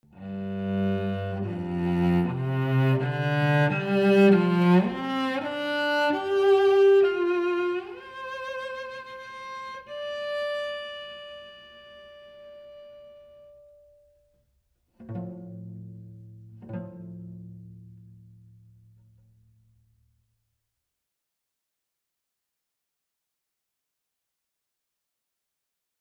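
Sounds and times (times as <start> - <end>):
cello in a small chamber: 0.0 - 19.2.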